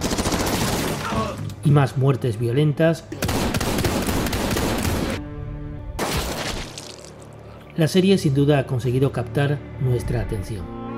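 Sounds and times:
rapid bursts of gunfire: 0:00.0 - 0:01.1, 0:03.2 - 0:05.2
machine-gun fire: 0:00.0 - 0:01.2, 0:03.2 - 0:05.2
speech: 0:01.6 - 0:03.2, 0:07.8 - 0:10.8.

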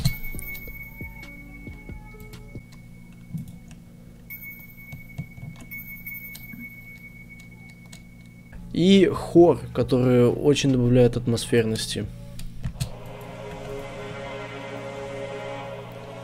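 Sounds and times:
melody of small bells in a music track: 0:00.0 - 0:08.6
soft rhythmic ticks: 0:00.0 - 0:08.7
low sustained tone: 0:00.0 - 0:09.5, 0:12.2 - 0:16.2
speech: 0:08.8 - 0:12.2.

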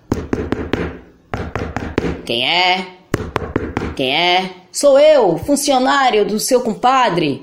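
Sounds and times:
sharp knocks on a door: 0:00.1 - 0:02.3, 0:03.2 - 0:04.0
speech: 0:02.3 - 0:03.0, 0:03.7 - 0:07.4.

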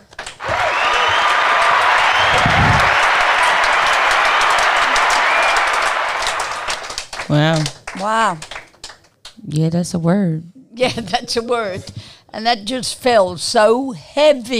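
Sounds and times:
crowd applauding: 0:00.2 - 0:09.0
speech: 0:07.3 - 0:08.5, 0:09.5 - 0:14.5.

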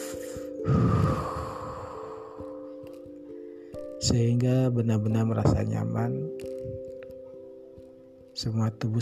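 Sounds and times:
breath drawn in through the nose during a breathing exercise: 0:00.0 - 0:02.6
slower, softer release of air: 0:00.0 - 0:02.6
speech: 0:04.1 - 0:06.4, 0:08.4 - 0:09.0.

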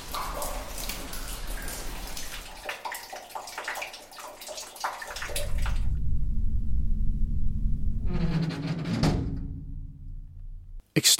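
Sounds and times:
water dripping and splashing in a large cave: 0:00.0 - 0:06.0
deep hollow rumble in a large cave: 0:05.3 - 0:10.8.

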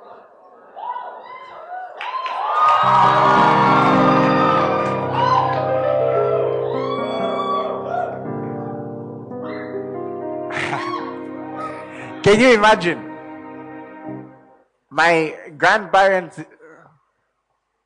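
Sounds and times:
high whoops: 0:00.8 - 0:08.2, 0:10.6 - 0:11.2
large audience screaming and shouting: 0:00.8 - 0:08.8
speech: 0:12.3 - 0:13.0, 0:15.0 - 0:16.5.

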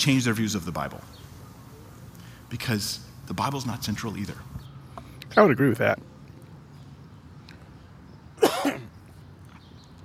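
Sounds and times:
speech: 0:00.0 - 0:01.3, 0:02.5 - 0:04.5, 0:05.3 - 0:06.1
breathy raspy cough: 0:08.4 - 0:08.9.

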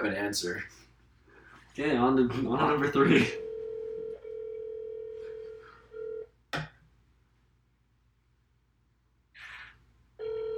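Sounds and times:
speech: 0:00.0 - 0:00.8, 0:01.8 - 0:03.4
telephone ringback tone on a call: 0:03.4 - 0:06.2, 0:10.2 - 0:10.5.

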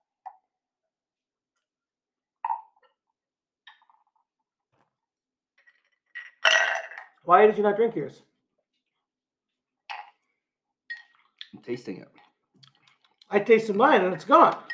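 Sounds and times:
glasses clinking together in a toast: 0:06.2 - 0:07.2, 0:10.9 - 0:11.2, 0:13.7 - 0:14.7
speech: 0:07.3 - 0:08.3, 0:11.7 - 0:12.3, 0:13.3 - 0:14.7.

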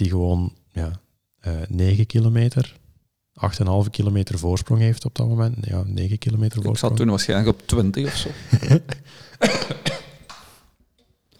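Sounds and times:
speech: 0:00.0 - 0:02.8, 0:03.4 - 0:09.8
laughter: 0:06.6 - 0:10.6
person coughing: 0:07.7 - 0:10.6.

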